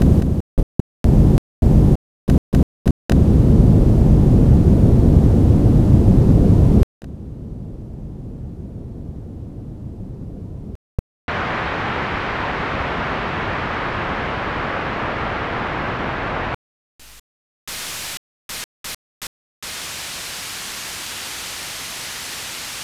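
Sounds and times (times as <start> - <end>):
noise: 0.0 - 0.4, 1.0 - 7.8, 11.3 - 18.2, 19.6 - 22.8.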